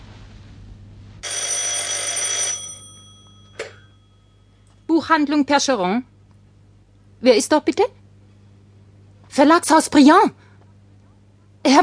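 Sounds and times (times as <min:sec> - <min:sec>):
telephone bell ringing: 0:01.2 - 0:04.6
speech: 0:05.0 - 0:06.1, 0:07.2 - 0:08.0, 0:09.4 - 0:10.4, 0:11.6 - 0:11.8.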